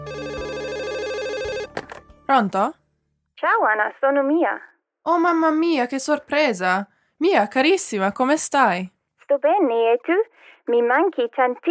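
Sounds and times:
telephone ringing with bright warbling electronic tone: 0:00.0 - 0:02.0
speech: 0:02.3 - 0:02.8, 0:03.4 - 0:11.6.

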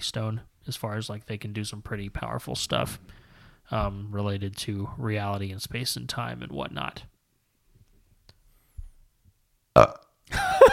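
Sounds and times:
speech: 0:00.0 - 0:07.1, 0:09.8 - 0:10.7
loud rumbling burp: 0:09.8 - 0:10.2.

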